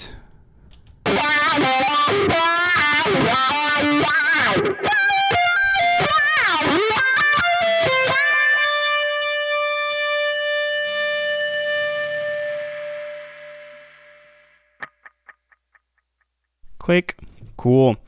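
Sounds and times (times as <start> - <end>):
heavily distorted electric guitar playing a lead solo of a jingle melody: 1.0 - 15.3
speech: 16.9 - 18.0.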